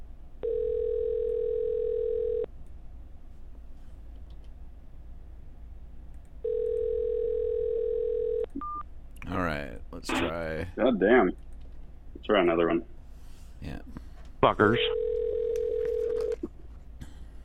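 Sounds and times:
telephone ringing tone while a call waits to be answered: 0.4s - 2.5s, 6.4s - 8.8s, 14.9s - 16.4s
speech: 10.0s - 11.4s, 12.3s - 12.9s, 13.6s - 15.0s.

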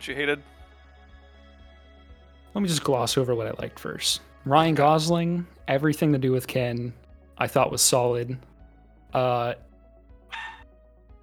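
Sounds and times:
speech: 0.0s - 0.6s, 2.5s - 8.5s, 9.1s - 9.7s
dog barking: 10.3s - 10.6s.

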